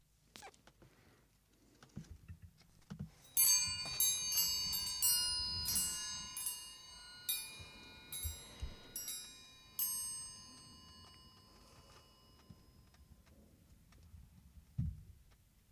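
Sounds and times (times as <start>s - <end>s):
soft clicks and rustles: 0.3s - 15.7s
bright metal chimes struck to begin a silence: 3.2s - 13.0s.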